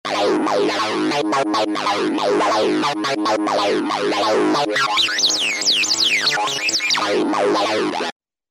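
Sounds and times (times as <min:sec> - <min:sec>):
Roland V-Synth synthesizer Radio 303 factory patch: 0:00.1 - 0:08.1.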